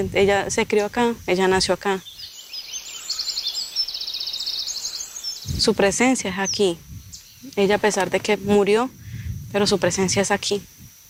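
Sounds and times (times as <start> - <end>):
speech: 0.0 - 2.2, 5.6 - 10.8
small bird singing: 0.0 - 10.6.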